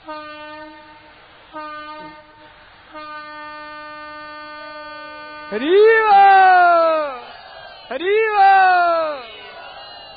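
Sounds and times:
train horn blasts: 0.0 - 5.6
speech: 0.1 - 0.4, 5.5 - 6.6, 7.9 - 8.8.

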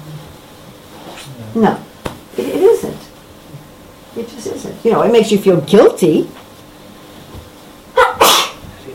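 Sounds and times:
speech: 1.2 - 1.9, 4.2 - 6.4
sneeze: 8.0 - 8.6.

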